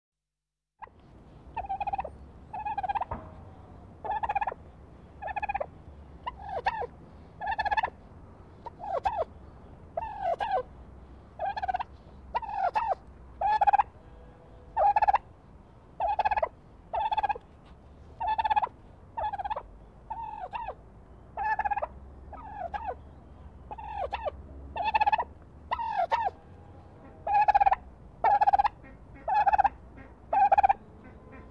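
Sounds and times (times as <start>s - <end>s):
turkeys: 0.8s - 3.2s, 4.0s - 4.6s, 5.2s - 8.0s, 8.6s - 9.3s, 10.0s - 10.7s, 11.4s - 13.9s, 14.7s - 15.2s, 16.0s - 20.8s, 21.4s - 23.0s, 23.7s - 26.4s, 27.0s - 31.4s.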